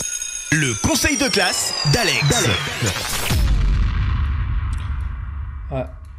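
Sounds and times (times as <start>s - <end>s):
brief swooshing accent: 0.0s - 3.8s
speech: 0.5s - 3.4s, 5.7s - 6.0s
booming explosion blast with crackling debris and rumbling tail: 2.0s - 6.1s.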